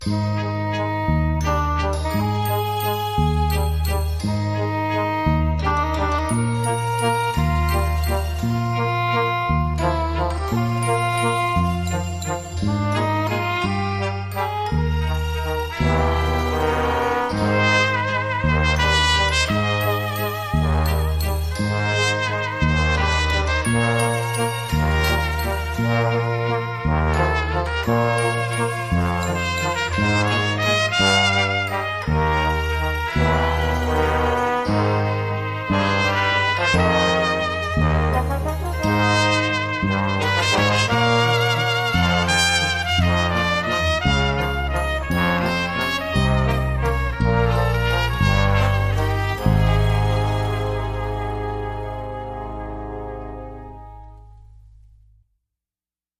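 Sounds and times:
light quirky trumpet waltz: 0.0 - 54.7.

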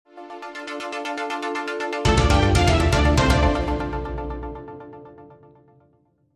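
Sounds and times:
commercial break segue musical sting: 2.1 - 4.8.

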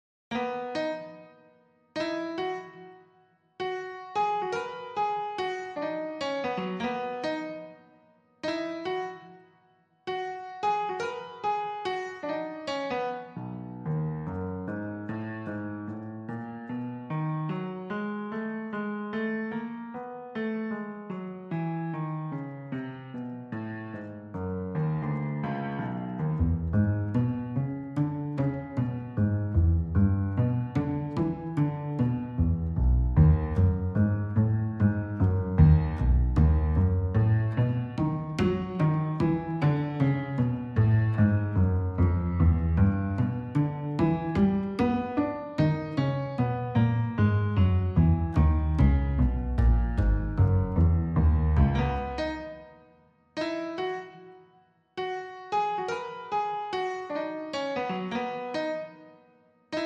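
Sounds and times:
clean piano: 0.3 - 59.8
clean double bass: 26.2 - 44.6, 47.2 - 52.3.

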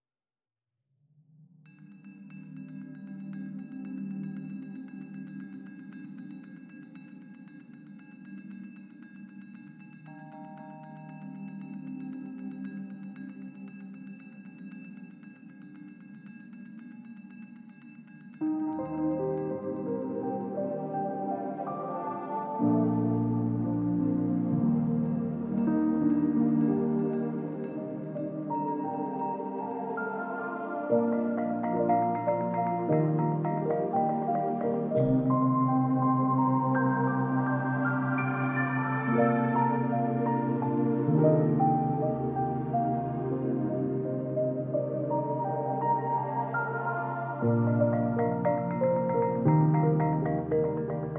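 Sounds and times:
DX7 synthesizer piano: 2.7 - 6.8, 10.1 - 13.9, 18.4 - 51.1.

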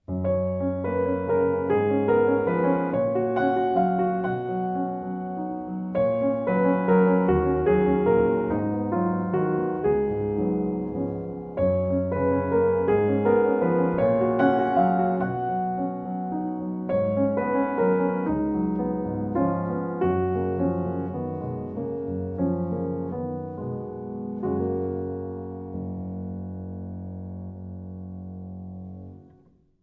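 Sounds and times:
solo piano: 0.0 - 29.8.

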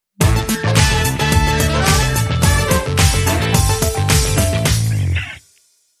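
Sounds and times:
musical sting: 0.5 - 4.1
flute-like loops: 0.5 - 4.6.

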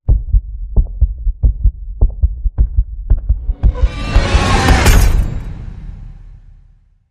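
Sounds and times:
heartbeat thump: 0.0 - 5.0.

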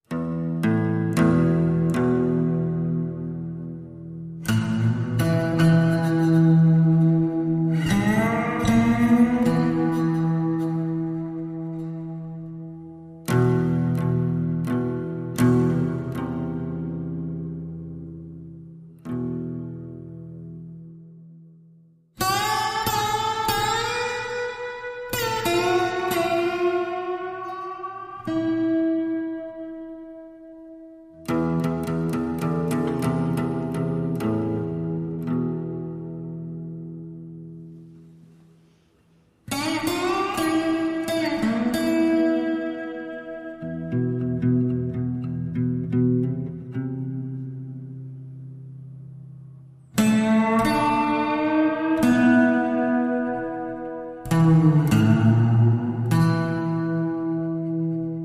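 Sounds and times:
guitar playing in E minor: 0.0 - 58.2.

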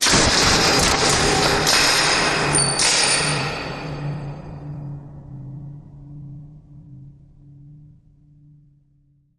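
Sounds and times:
crashy rattling impact: 0.0 - 4.3.

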